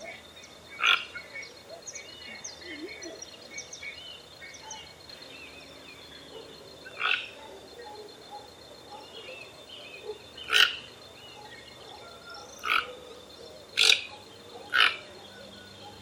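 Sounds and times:
other birds chirping and twittering: 0.0s - 16.0s
Toco toucan Ramphastos toco uttering hoarse croaky notes: 0.8s - 1.3s, 6.3s - 16.0s.

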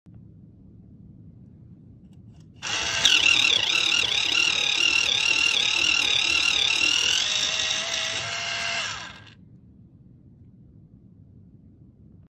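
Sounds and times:
desktop pencil sharpener: 2.6s - 9.4s.

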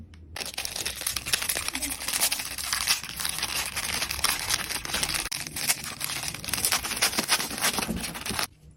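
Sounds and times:
biscuit crunching ASMR: 0.4s - 8.5s.

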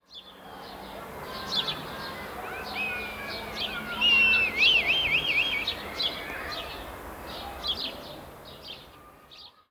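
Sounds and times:
red kite calling: 1.0s - 8.1s.

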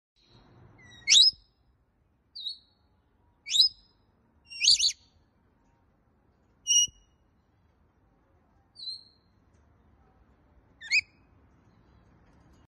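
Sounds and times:
rainbow lorikeet calling: 0.2s - 1.5s, 2.4s - 2.8s, 3.5s - 3.9s, 4.5s - 5.1s, 6.7s - 7.1s, 8.8s - 9.3s, 10.8s - 11.2s.

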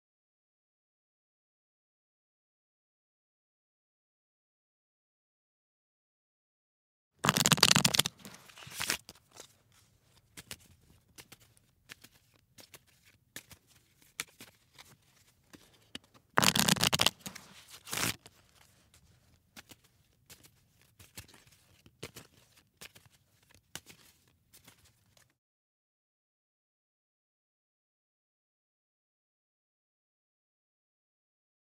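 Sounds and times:
playing card handling: 7.2s - 25.2s.

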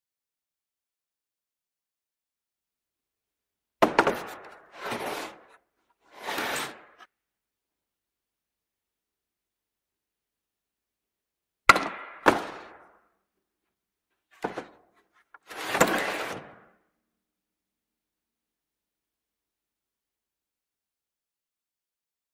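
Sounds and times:
wooden pallet: 3.8s - 7.1s, 11.7s - 12.9s, 14.3s - 16.8s.

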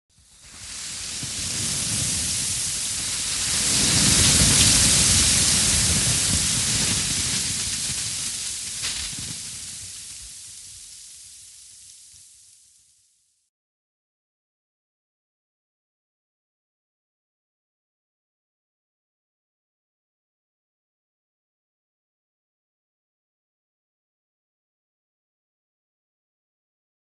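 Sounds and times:
avalanche: 0.4s - 11.4s.

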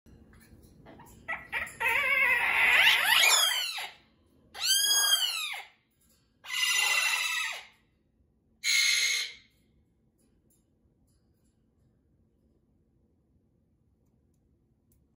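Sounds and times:
Amazon parrot: 0.8s - 8.0s, 8.6s - 9.6s.

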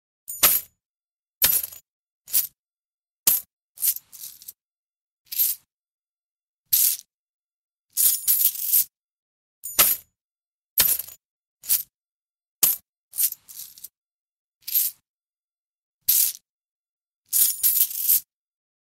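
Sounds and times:
coins in a bag: 1.4s - 2.6s, 3.3s - 4.6s, 5.3s - 5.7s, 6.7s - 7.1s, 8.0s - 8.9s, 10.8s - 11.9s, 12.6s - 13.9s, 14.6s - 15.0s, 16.1s - 16.4s, 17.3s - 18.3s.

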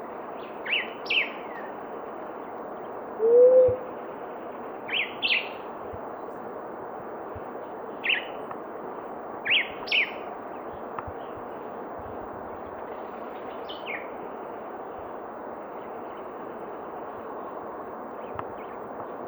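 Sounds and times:
continuous hiss: 0.0s - 19.2s
Blue-headed quail-dove giving a soft low rising coo: 3.2s - 3.9s.

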